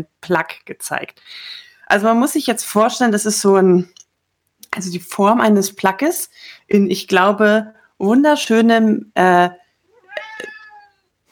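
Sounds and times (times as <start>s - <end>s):
speech: 0.0s - 4.0s, 4.7s - 9.6s
cat meowing: 9.9s - 11.1s.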